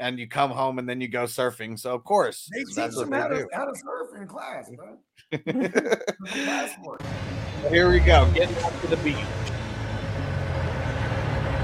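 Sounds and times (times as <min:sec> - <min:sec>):
speech: 0:00.0 - 0:09.5
laughter: 0:02.5 - 0:07.0
road noise: 0:06.4 - 0:11.6
heavy trash truck engine rumbling past: 0:07.0 - 0:11.6.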